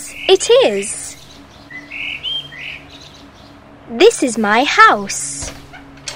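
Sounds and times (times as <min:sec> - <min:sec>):
faint hum: 0:00.0 - 0:06.1
parrot chirping: 0:00.1 - 0:03.6
speech: 0:00.3 - 0:01.0, 0:03.9 - 0:05.4.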